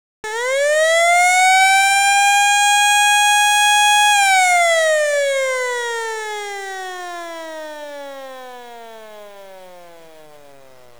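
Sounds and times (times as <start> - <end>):
Federal Signal siren: 0.2 - 10.9.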